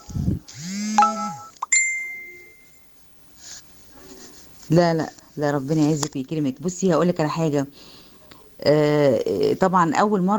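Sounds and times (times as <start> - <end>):
notification ring of short electronic chime tones: 0.9 - 2.9
bright bell-like dings: 1.0 - 2.9
speech: 4.7 - 8.0, 8.6 - 10.3.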